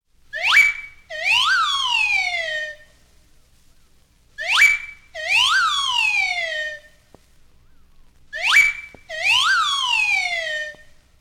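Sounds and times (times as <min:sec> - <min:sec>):
slide whistle: 0:00.3 - 0:03.0, 0:04.4 - 0:07.0, 0:08.3 - 0:11.0.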